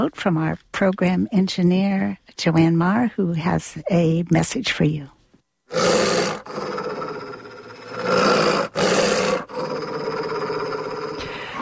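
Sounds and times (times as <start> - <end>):
speech: 0.0 - 6.7
dog growling in a deep rough snarl: 5.7 - 11.6.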